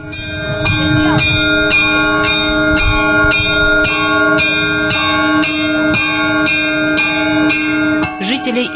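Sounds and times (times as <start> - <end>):
church bells pealing at a festival: 0.0 - 8.7.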